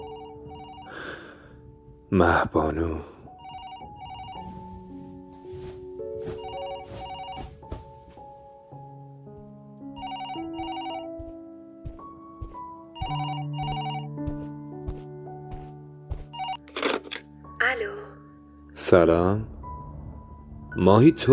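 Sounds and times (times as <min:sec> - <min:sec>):
phone ringing with a melodic electronic ringtone: 0:00.0 - 0:01.0, 0:03.4 - 0:04.5, 0:06.4 - 0:07.4, 0:10.0 - 0:11.1, 0:13.0 - 0:14.1, 0:16.4 - 0:16.6
speech: 0:02.1 - 0:03.1, 0:18.9 - 0:19.5, 0:20.8 - 0:21.3.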